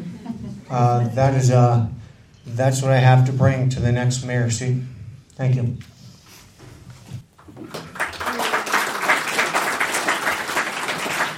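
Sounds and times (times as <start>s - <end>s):
speech: 0.7s - 5.9s
audience applause after a mayoral candidate speaks: 7.5s - 11.3s.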